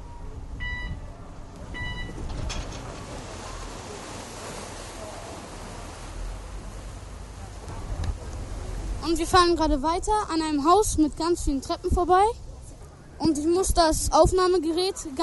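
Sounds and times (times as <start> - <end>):
steady roar of ferry engine and water noise: 0.0 - 15.2
short electronic beeps from a ferry's boarding bridge: 0.6 - 1.0, 1.8 - 2.2
speech: 9.1 - 12.4, 13.2 - 15.2.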